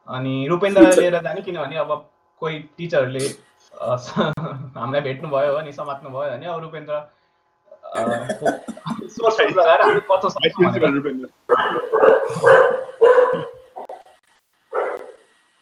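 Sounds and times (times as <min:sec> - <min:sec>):
speech: 0:00.1 - 0:07.2, 0:07.9 - 0:12.9
laughter: 0:00.4 - 0:01.6, 0:03.1 - 0:06.0, 0:07.8 - 0:13.8
dog barking: 0:09.2 - 0:10.2, 0:11.5 - 0:14.1, 0:14.7 - 0:15.2.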